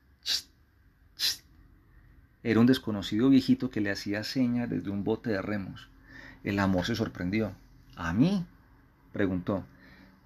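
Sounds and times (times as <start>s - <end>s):
old man making psst hisses to get attention: 0.2s - 0.6s, 1.2s - 1.5s
speech: 2.4s - 8.6s, 9.2s - 10.2s.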